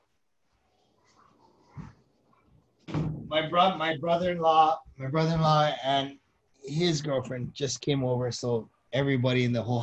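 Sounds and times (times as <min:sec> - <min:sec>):
door closing: 0:02.8 - 0:03.6
speech: 0:03.3 - 0:09.8.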